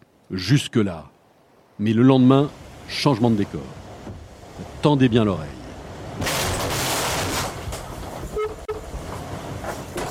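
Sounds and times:
speech: 0:00.3 - 0:01.1, 0:01.8 - 0:03.8, 0:04.8 - 0:05.6
rushing water and hull noise of an 8.5-tonne racing sailboat: 0:01.2 - 0:10.0
racing sailboat slamming into a sperm whale, jolt and creaking squeal: 0:08.2 - 0:09.0.

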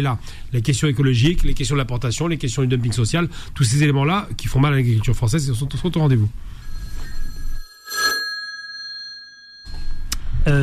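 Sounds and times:
speech: 0:00.0 - 0:06.6
telephone ringtone signalling a live caller: 0:06.5 - 0:10.1.

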